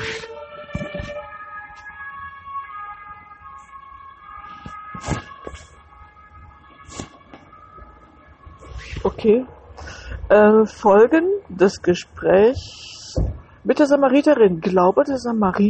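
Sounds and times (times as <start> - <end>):
knocks and bumps: 0.0 - 1.4, 12.6 - 13.6
siren wailing: 0.0 - 15.6
speech: 9.1 - 9.6, 10.3 - 15.6.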